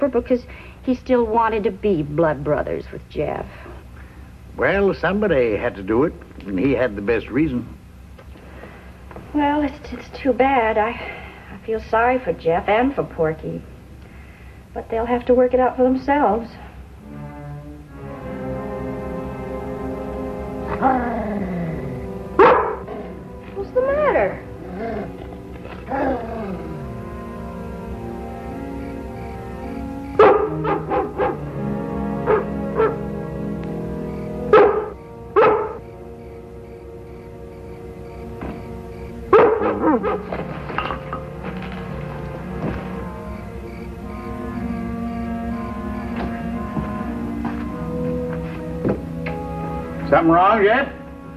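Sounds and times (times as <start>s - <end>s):
speech: 0.0s - 3.7s, 4.6s - 7.8s, 9.3s - 13.7s, 14.8s - 17.2s, 20.8s - 21.6s, 50.2s - 50.9s
droning music: 0.0s - 8.1s, 9.0s - 51.3s
dog barking: 22.4s - 23.2s, 30.2s - 31.5s, 32.2s - 33.1s, 34.5s - 35.9s, 39.3s - 40.4s.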